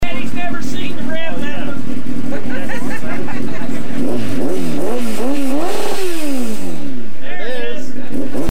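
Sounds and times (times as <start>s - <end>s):
2000 Kawasaki ZX9 motorcycle: 0.1s - 8.4s
laughter: 2.2s - 4.3s.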